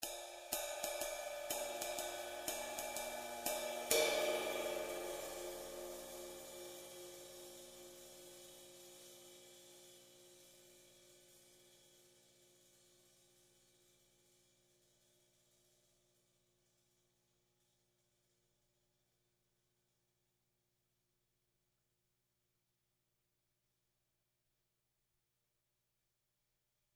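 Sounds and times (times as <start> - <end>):
20in custom ride cymbal: 0.0 - 13.2.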